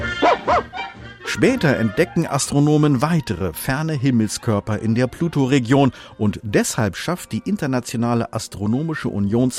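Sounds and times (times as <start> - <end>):
cartoon dog barking and yipping: 0.2 - 0.8
speech: 1.3 - 9.5.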